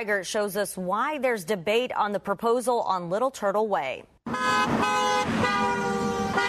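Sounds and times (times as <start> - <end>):
speech: 0.0 - 5.6
cars passing on a road: 4.3 - 6.4.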